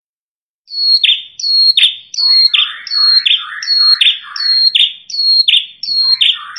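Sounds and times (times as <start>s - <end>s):
Red-headed prenjak prinia lure call whistle and buzz: 0.7s - 6.5s
speech: 1.6s - 5.2s.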